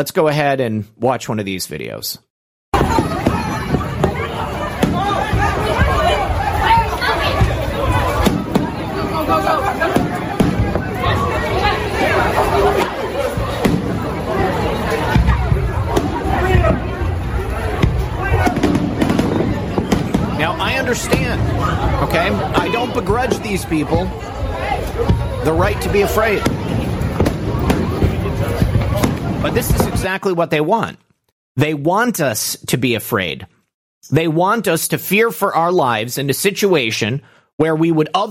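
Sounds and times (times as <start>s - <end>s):
speech: 0.0s - 3.3s, 22.0s - 24.4s, 25.0s - 26.7s, 29.4s - 31.0s, 31.6s - 38.2s
fireworks bursting and crackling in Orlando: 2.8s - 30.1s
large crowd murmuring and calling out: 2.8s - 30.1s.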